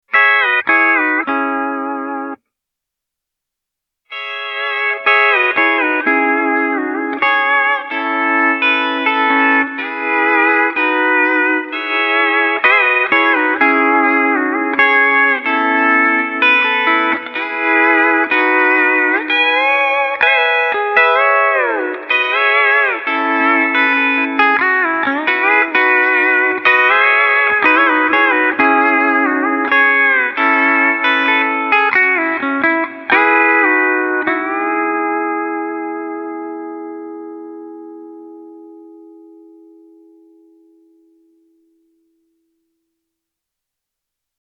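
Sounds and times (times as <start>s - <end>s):
pedal steel guitar with plate reverb: 0.1s - 2.4s, 4.1s - 42.6s.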